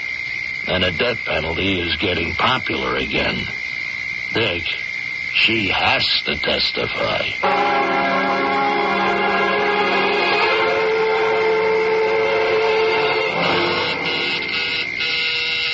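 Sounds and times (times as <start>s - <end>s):
speech: 0.7s - 3.6s, 4.3s - 8.4s
doorbell buzzer droning: 7.4s - 15.7s.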